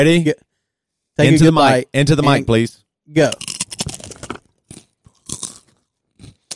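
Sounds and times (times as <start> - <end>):
speech: 0.0 - 0.5, 1.2 - 4.2
crunchy chewing at the microphone: 3.3 - 6.5.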